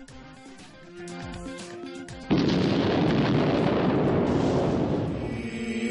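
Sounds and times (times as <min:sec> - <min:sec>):
bomb explosion in a taco restaurant: 0:02.3 - 0:05.4
roaring rumble of debris and fire: 0:02.3 - 0:05.8.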